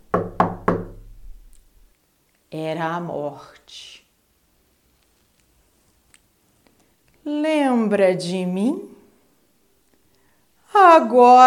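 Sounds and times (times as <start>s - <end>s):
knocking on the wooden door of a house: 0.0s - 1.2s
speech: 2.5s - 4.0s, 7.2s - 8.9s, 10.7s - 11.4s.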